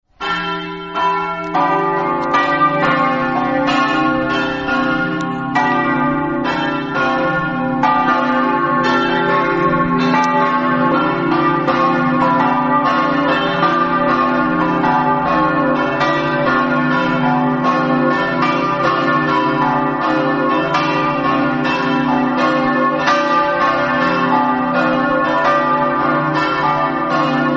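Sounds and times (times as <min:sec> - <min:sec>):
bells ringing in Gradisca: 0:00.2 - 0:27.5.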